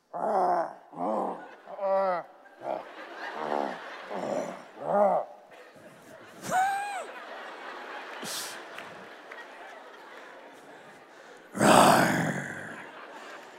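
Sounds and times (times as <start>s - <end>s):
people imitating lion roars: 0.0s - 5.4s, 11.5s - 13.0s
laughter: 0.7s - 13.5s.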